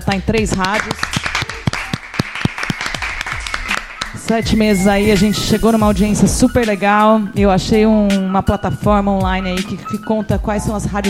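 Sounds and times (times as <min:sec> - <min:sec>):
small group applauding: 0:00.0 - 0:05.9
speech: 0:00.1 - 0:01.2, 0:04.3 - 0:11.0.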